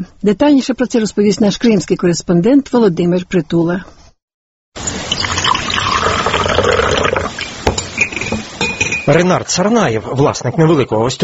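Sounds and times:
speech: 0.0 - 4.0, 9.1 - 11.2
coffee from a cezve pouring into small cups: 4.8 - 9.2.

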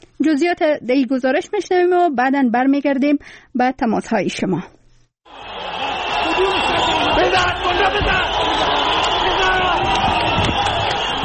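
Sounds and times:
speech: 0.2 - 4.8
excited yells of spectators: 5.3 - 11.2
large crowd of spectators cheering at a sports ground: 5.3 - 11.2.

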